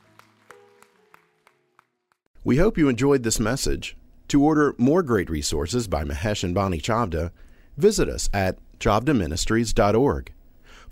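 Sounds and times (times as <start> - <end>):
audience clapping in a steady rhythm: 0.0 - 2.3
speech: 2.4 - 10.8.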